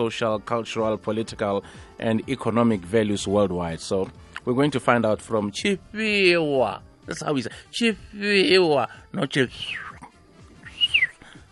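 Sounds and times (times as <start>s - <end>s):
speech: 0.0s - 9.8s
people whistling: 9.5s - 10.0s, 10.6s - 11.4s.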